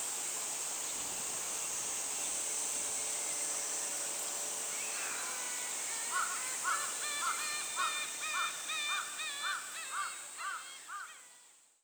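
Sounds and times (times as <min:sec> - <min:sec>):
steady background hiss: 0:00.0 - 0:11.8
bird giving harsh crow-like caws: 0:06.1 - 0:11.3.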